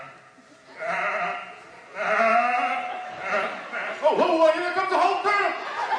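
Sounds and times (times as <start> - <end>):
sheep bleating: 0.8 - 4.2
laughter: 2.0 - 5.9.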